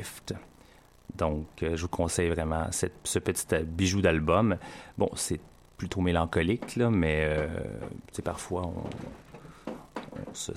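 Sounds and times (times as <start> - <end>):
speech: 0.0 - 0.5, 1.1 - 9.2, 10.2 - 10.5
wooden chair creaking: 6.4 - 10.5.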